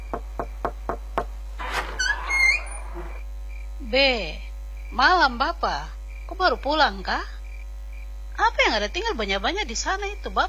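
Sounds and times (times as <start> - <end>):
knocking on a door: 0.0 - 2.0
scraping rustle: 1.6 - 3.2
faint high squeaks: 1.6 - 3.3
speech: 3.9 - 7.4, 8.4 - 10.4.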